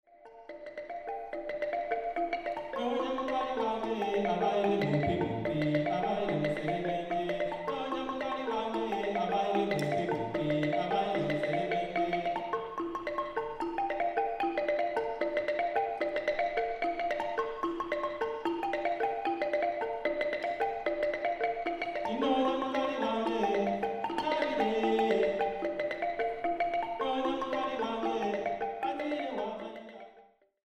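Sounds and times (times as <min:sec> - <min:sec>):
African xylophone: 0:00.1 - 0:30.5.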